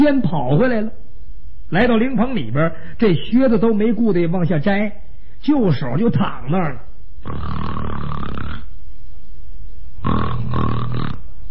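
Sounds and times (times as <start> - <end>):
speech: 0.0 - 1.1, 1.7 - 8.7
male storyteller imitating snoring: 7.2 - 8.7, 10.0 - 11.3.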